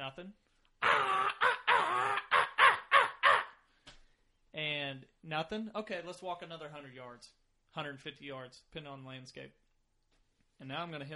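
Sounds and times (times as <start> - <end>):
speech: 0.1 - 1.1, 5.3 - 9.6, 10.6 - 11.1
crow call sounded as a hunting locator call: 0.8 - 3.6.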